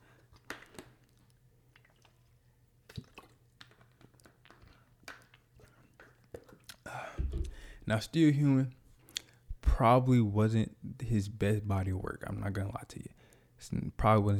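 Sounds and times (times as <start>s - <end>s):
wet mouth clicks: 1.8s - 2.2s, 2.9s - 7.7s, 9.1s - 9.4s
person sipping and swallowing water: 2.9s - 3.4s, 4.0s - 7.9s
low steady hum: 6.9s - 14.3s
speech: 7.9s - 8.8s, 9.8s - 14.3s.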